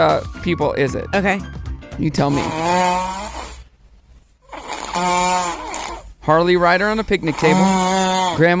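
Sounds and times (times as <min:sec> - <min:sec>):
speech: 0:00.0 - 0:03.3, 0:06.3 - 0:08.5
little boy on a couch snoring through a stuffy nose: 0:02.2 - 0:03.7, 0:04.4 - 0:06.1, 0:07.3 - 0:08.5.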